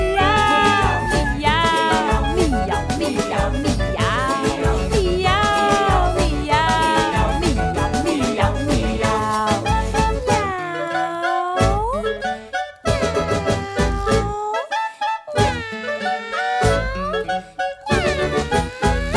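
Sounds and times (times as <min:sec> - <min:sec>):
voice imitating kitten meows: 0:00.0 - 0:02.2, 0:10.3 - 0:12.2, 0:13.3 - 0:14.7, 0:15.3 - 0:19.1
musical accompaniment: 0:00.0 - 0:19.1.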